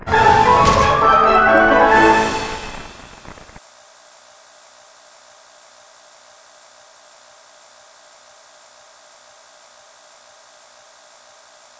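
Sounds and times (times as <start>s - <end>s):
free spin intro jingle: 0.0s - 3.2s.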